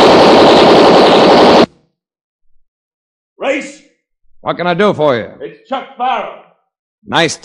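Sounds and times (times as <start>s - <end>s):
tommy gun machine-gun burst: 0.0s - 1.7s
speech: 3.5s - 3.8s, 4.4s - 6.4s, 7.0s - 7.4s.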